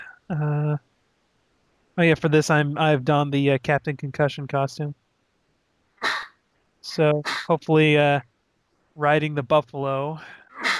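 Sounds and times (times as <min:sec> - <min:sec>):
speech: 0:00.3 - 0:00.9, 0:02.0 - 0:05.0, 0:06.8 - 0:08.3, 0:09.0 - 0:10.4
person sneezing: 0:07.3 - 0:07.5, 0:10.6 - 0:10.7.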